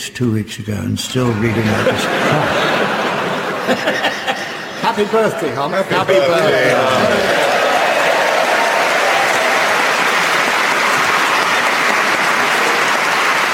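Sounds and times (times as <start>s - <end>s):
speech: 0.0s - 3.1s, 3.7s - 4.2s, 4.9s - 7.5s
laughter: 1.1s - 13.5s
loud sustained applause from a large audience: 1.5s - 13.5s.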